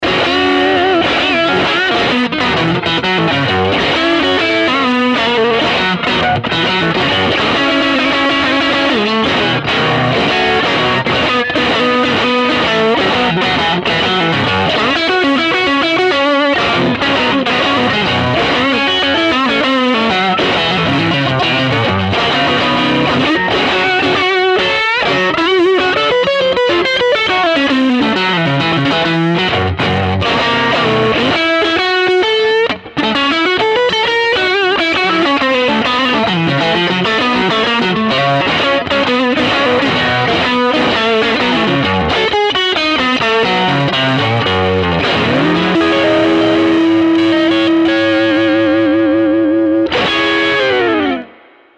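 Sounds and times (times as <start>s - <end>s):
guitar neck pickup tone: 0.0s - 51.7s.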